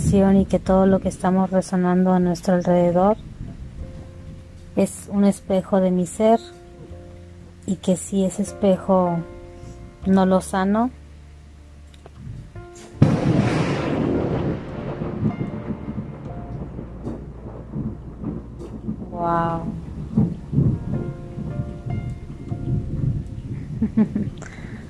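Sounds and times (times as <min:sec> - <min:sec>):
speech: 0:00.0 - 0:03.3, 0:04.8 - 0:06.6, 0:07.7 - 0:09.3, 0:10.0 - 0:11.0, 0:19.2 - 0:19.8, 0:23.8 - 0:24.5
deep rolling thunder rumble: 0:00.0 - 0:07.0, 0:12.2 - 0:24.8
thunderclap: 0:02.3 - 0:04.8, 0:12.2 - 0:24.8.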